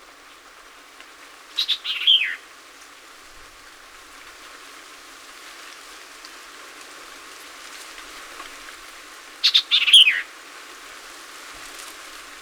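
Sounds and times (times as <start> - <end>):
steady background hiss: 0.0 - 12.3
White-eyed Vireo singing phrases of chips and a down-slurred whistle: 1.6 - 2.4.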